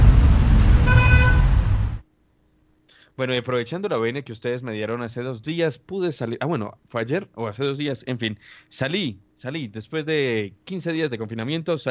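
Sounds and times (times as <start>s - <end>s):
road traffic rumbling: 0.0s - 2.0s
car horn: 0.7s - 1.8s
speech: 3.2s - 11.9s.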